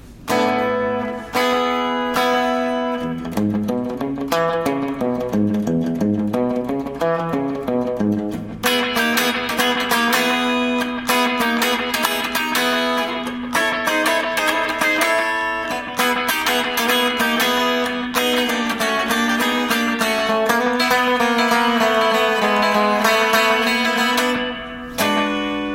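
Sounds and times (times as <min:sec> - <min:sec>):
electric guitar with light distortion and delay playing a melodic line: 0:00.3 - 0:25.7.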